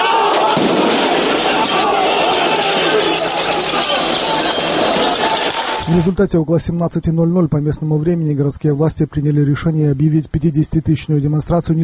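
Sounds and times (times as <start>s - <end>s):
crowd of demonstrators roaring during clashes with police at a march: 0.0s - 5.9s
firecrackers and blast packets exploding: 0.0s - 5.9s
speech: 5.9s - 11.8s.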